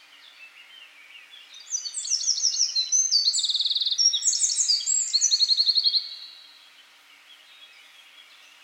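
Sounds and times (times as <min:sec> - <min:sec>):
Eurasian wren Troglodytes troglodytes singing: 0:01.5 - 0:06.4.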